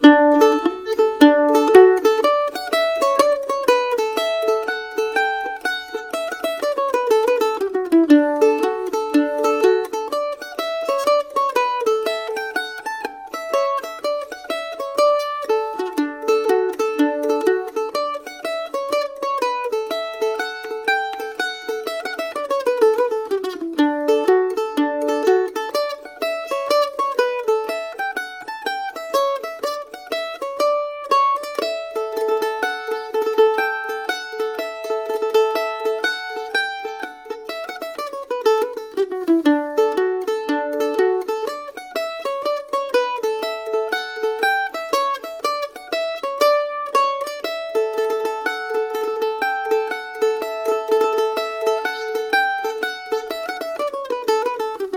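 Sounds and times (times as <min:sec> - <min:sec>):
mandolin playing a hornpipe: 0:00.0 - 0:54.9.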